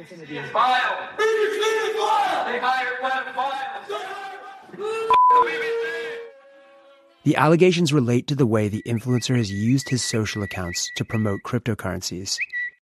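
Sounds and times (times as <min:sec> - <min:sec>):
speech: 0:00.0 - 0:06.2, 0:07.2 - 0:12.6
crowd of supporters shouting abuse: 0:00.4 - 0:06.4
electronic beep: 0:05.1 - 0:05.4, 0:08.6 - 0:11.6.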